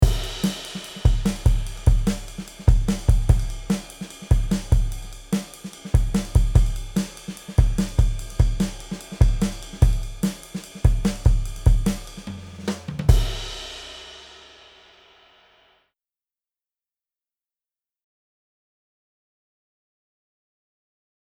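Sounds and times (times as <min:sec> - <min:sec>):
drums through a Chandler TG 1 with THD: 0:00.0 - 0:15.6.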